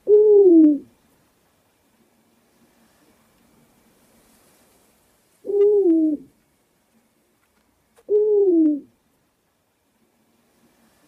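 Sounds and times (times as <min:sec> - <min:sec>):
owl hooting: 0:00.0 - 0:00.9, 0:05.4 - 0:06.3, 0:08.1 - 0:09.0.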